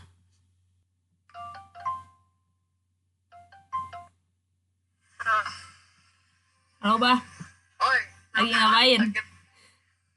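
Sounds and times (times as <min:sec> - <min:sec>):
phone ringing on an outgoing call: 0:01.3 - 0:02.4, 0:03.3 - 0:04.2
speech: 0:06.8 - 0:07.3, 0:08.4 - 0:09.3.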